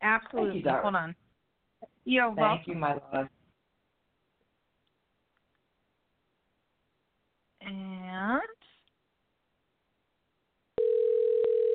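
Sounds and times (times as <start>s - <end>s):
speech: 0.3s - 3.4s
telephone dial tone while dialing: 10.8s - 11.7s.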